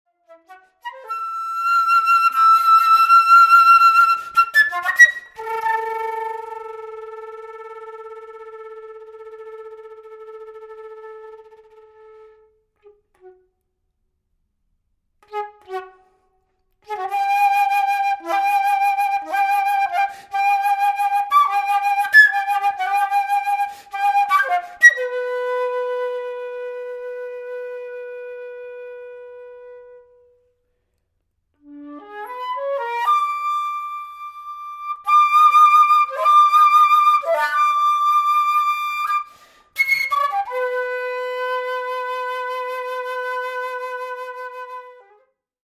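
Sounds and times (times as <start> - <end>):
flutter-tongued wind instrument: 0.1 - 13.7, 15.2 - 30.7, 31.6 - 45.4.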